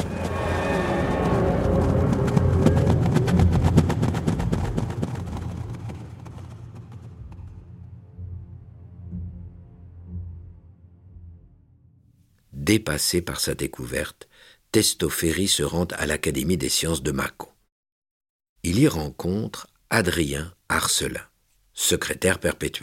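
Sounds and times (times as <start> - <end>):
galloping horse hooves: 0.0 - 7.7
speech: 12.7 - 17.5, 18.6 - 22.8.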